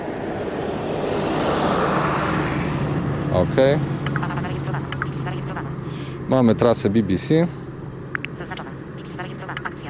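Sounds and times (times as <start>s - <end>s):
bus passing by with deep engine rumble and roaring hiss: 0.0s - 7.8s
speech: 3.4s - 3.9s, 6.3s - 7.6s.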